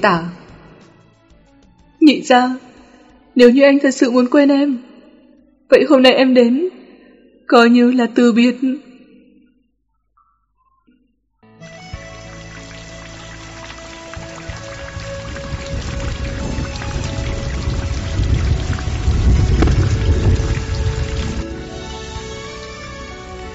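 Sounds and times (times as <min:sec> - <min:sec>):
speech: 0:00.0 - 0:00.4, 0:02.1 - 0:02.7, 0:03.4 - 0:04.9, 0:05.7 - 0:06.8, 0:07.5 - 0:08.9
pouring rain: 0:11.9 - 0:23.5
thunder rumbling in a storm: 0:14.4 - 0:21.6
gusting wind: 0:14.8 - 0:21.7.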